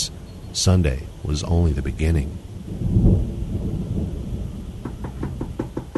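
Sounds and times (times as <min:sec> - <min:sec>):
deep roll of thunder: 0:00.0 - 0:05.9
heavy rain pouring: 0:00.0 - 0:05.9
speech: 0:00.6 - 0:03.0
sharp evenly spaced knocks: 0:04.8 - 0:05.9.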